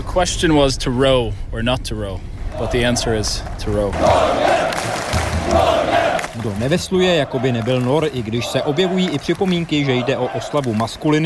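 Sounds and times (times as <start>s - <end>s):
speech: 0.2s - 5.7s, 6.4s - 11.2s
large group of voices chanting in unison during a rowing ritual: 2.5s - 3.1s, 3.9s - 11.2s.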